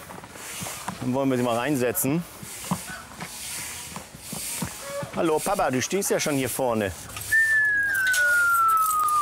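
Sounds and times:
speech: 0:01.0 - 0:02.3, 0:05.2 - 0:07.1
high whistle tone: 0:07.2 - 0:09.1.

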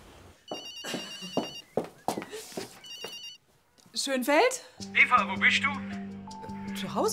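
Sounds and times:
mobile phone ringtone chirping: 0:00.5 - 0:01.7, 0:02.8 - 0:03.4
speech: 0:04.0 - 0:06.0, 0:06.8 - 0:07.1.

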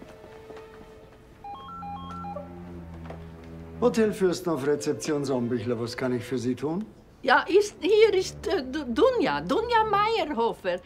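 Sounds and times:
hotel reception telephone ringing with an electronic tone: 0:01.4 - 0:03.0
speech: 0:03.8 - 0:10.8.

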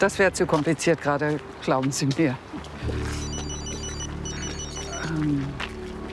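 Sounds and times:
speech: 0:00.0 - 0:03.2, 0:05.1 - 0:05.7
telephone ringing with an electronic ringtone: 0:03.2 - 0:04.8.

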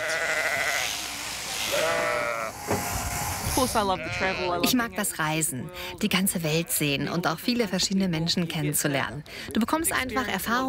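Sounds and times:
sheep bleating during shearing: 0:00.0 - 0:02.6, 0:03.8 - 0:04.8
sharp thump: 0:02.6 - 0:03.0
speech: 0:03.6 - 0:10.6.

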